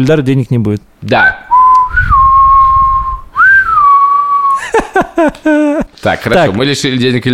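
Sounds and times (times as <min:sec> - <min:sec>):
speech: 0:00.0 - 0:01.4, 0:05.2 - 0:07.3
person whistling: 0:01.2 - 0:04.7
laughter: 0:04.6 - 0:06.0.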